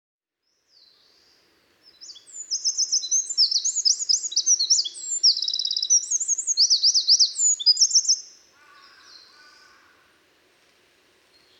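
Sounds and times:
Eurasian wren Troglodytes troglodytes singing high tinkling trills: 0:01.9 - 0:09.4.

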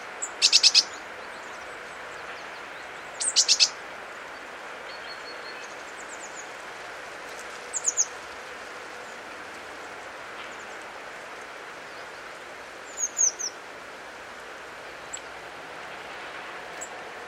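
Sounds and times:
steady background noise: 0:00.0 - 0:17.2
Eurasian blue tit high thin calls: 0:00.2 - 0:01.0, 0:03.2 - 0:03.8.

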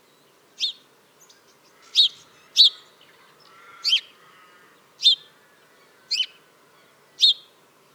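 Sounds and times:
house sparrow (Passer domesticus) chirping: 0:00.6 - 0:02.8, 0:05.0 - 0:05.3, 0:06.1 - 0:06.3, 0:07.2 - 0:07.5.

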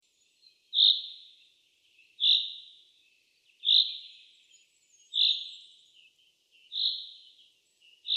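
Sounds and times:
common chaffinch Fringilla coelebs calling: 0:00.7 - 0:01.4, 0:02.0 - 0:02.8, 0:05.1 - 0:08.1.

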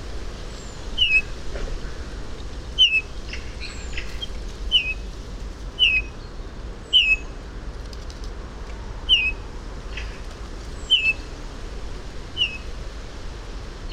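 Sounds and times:
Eurasian bullfinch Pyrrhula pyrrhula giving soft downward-sliding whistled notes: 0:01.0 - 0:01.3, 0:02.8 - 0:05.0, 0:05.8 - 0:06.2, 0:06.9 - 0:07.3, 0:09.1 - 0:09.4, 0:10.9 - 0:11.2, 0:12.4 - 0:12.6.

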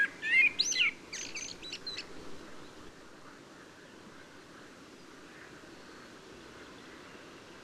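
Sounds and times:
common blackbird Turdus merula singing: 0:00.0 - 0:02.1
faint background hiss: 0:00.0 - 0:07.6.

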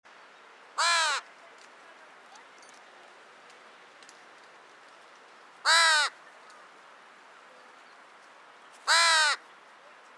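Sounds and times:
Corvus corone carrion crow giving harsh hoarse caws: 0:00.8 - 0:01.2, 0:05.6 - 0:06.2, 0:08.9 - 0:09.4.

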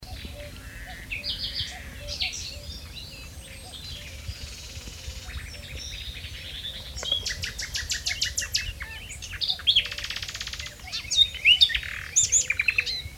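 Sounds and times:
common nightingale Luscinia megarhynchos singing: 0:00.0 - 0:13.1.

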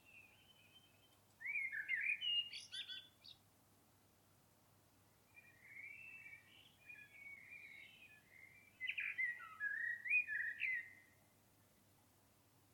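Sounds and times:
common blackbird Turdus merula singing: 0:00.0 - 0:03.4, 0:05.4 - 0:11.2.

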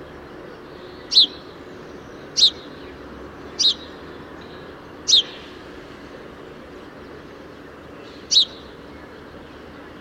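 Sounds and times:
steady low background noise: 0:00.0 - 0:09.9
house sparrow (Passer domesticus) chirps: 0:00.4 - 0:05.7, 0:06.4 - 0:09.9.

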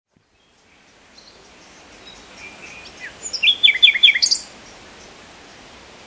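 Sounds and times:
common nightingale song: 0:00.2 - 0:06.0.

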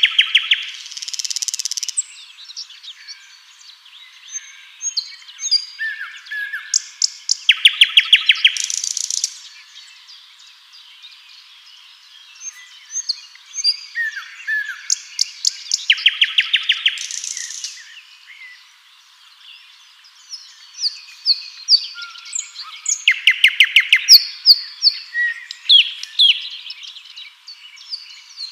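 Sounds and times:
common nightingale Luscinia megarhynchos singing: 0:00.0 - 0:28.5.

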